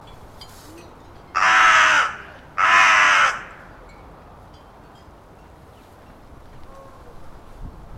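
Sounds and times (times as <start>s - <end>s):
Corvus corone harsh drawn-out caws: 1.4s - 3.8s.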